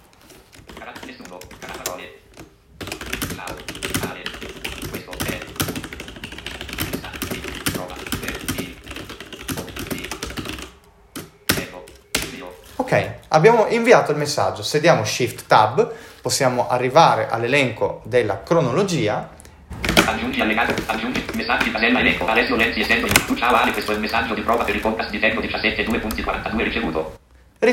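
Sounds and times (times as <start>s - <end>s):
typing on a computer keyboard: 0.5s - 12.4s, 20.0s - 26.4s
speech: 12.9s - 19.4s, 20.1s - 27.7s.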